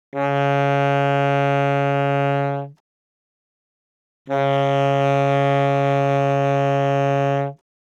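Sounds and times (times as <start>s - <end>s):
single reed saxophone: 0.1s - 2.8s, 4.3s - 7.7s.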